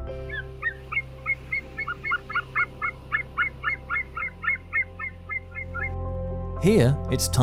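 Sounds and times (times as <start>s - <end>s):
low steady rumble: 0.0s - 6.6s
white-tailed sea eagles squawking in Lithuania: 0.2s - 6.0s
speech: 6.6s - 7.4s.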